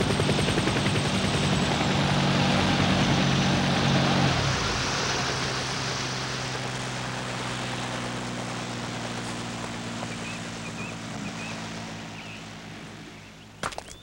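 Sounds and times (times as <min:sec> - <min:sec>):
airplane descending and landing with engine roar: 0:00.0 - 0:13.6.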